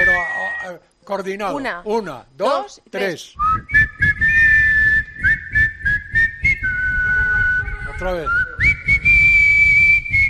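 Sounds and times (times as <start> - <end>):
speech: 0.6 - 4.2, 8.0 - 8.5
group of people whistling a tune in unison in a studio: 3.4 - 10.2.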